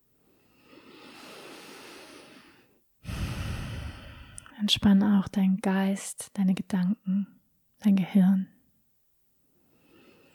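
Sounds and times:
slow calm breathing during a meditation: 0.2s - 4.5s, 9.6s - 10.3s
speech: 4.6s - 8.6s.

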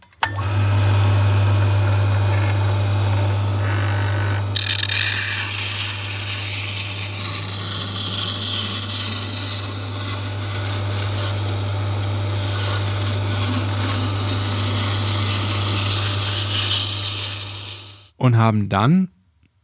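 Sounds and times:
grinding machine motor hum: 0.2s - 18.1s
knives ground on a coarse round machine grindstone: 4.6s - 18.0s
speech: 18.3s - 19.2s.

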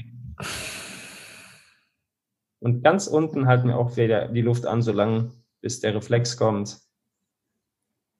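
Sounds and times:
forceful exhale after a held breath in a breathing exercise: 0.4s - 1.8s
speech: 2.6s - 6.8s.

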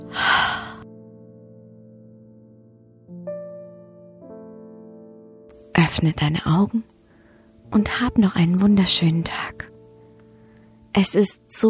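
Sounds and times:
deep breath during a guided breathing exercise: 0.0s - 0.8s, 7.0s - 7.6s, 10.3s - 10.8s
speech: 5.9s - 6.9s, 7.7s - 9.7s, 10.9s - 11.6s.

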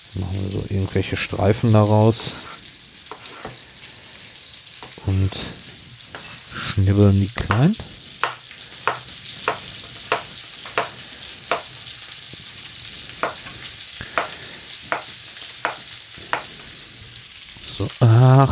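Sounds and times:
food sizzling in a frying pan: 0.0s - 18.4s
speech: 0.2s - 2.5s, 5.3s - 5.6s, 6.8s - 8.0s, 18.2s - 18.4s
sharp taps: 7.5s - 11.7s.

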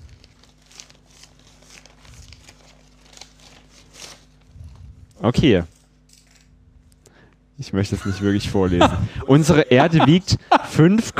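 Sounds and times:
paper envelope being torn open: 0.0s - 6.5s
speech: 5.2s - 5.7s, 7.6s - 11.1s
laughter: 7.8s - 11.1s.

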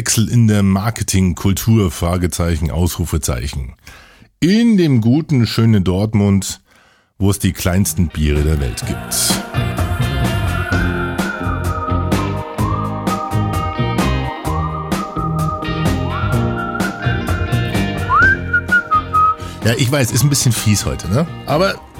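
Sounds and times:
speech: 0.0s - 6.6s, 7.2s - 9.8s, 19.6s - 21.9s
bright whistled pop melody with sliding notes: 8.6s - 19.7s
punchy backing track of drums and bass: 8.6s - 20.0s.

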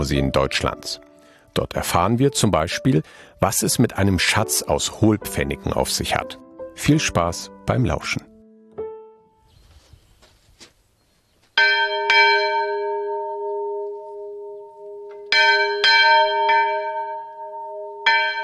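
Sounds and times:
speech: 0.0s - 8.3s
faint rustling: 9.4s - 11.6s
small church bell rung by pulling a long rope at an open-air museum: 11.6s - 18.4s.

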